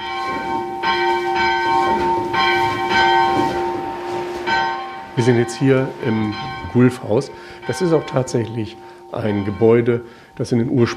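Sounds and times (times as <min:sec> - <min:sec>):
school bell rung at a school museum in Volmhusen East Frisia: 0:00.0 - 0:10.9
speech: 0:05.2 - 0:10.9.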